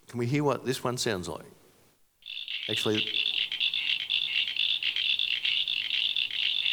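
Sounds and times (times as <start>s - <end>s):
speech: 0.1s - 1.6s, 2.7s - 3.2s
Eastern common froglets chirping in chorus: 2.2s - 6.7s.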